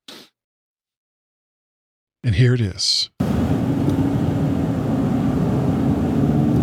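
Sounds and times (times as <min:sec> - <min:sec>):
speech: 0:02.2 - 0:03.2
moving car interior droning rumble: 0:03.2 - 0:06.6.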